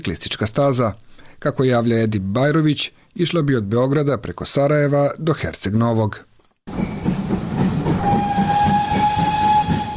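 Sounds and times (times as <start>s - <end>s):
speech: 0.0s - 6.8s
narrow-gauge steam train running with rumbling clatter: 6.7s - 9.9s
steam locomotive whistle on an old narrow-gauge railway in former Yugoslavia: 7.8s - 9.9s.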